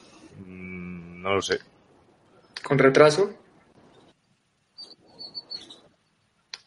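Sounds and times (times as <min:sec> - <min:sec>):
speech: 0:01.2 - 0:01.7, 0:02.7 - 0:03.4
birds chirping: 0:03.8 - 0:06.3.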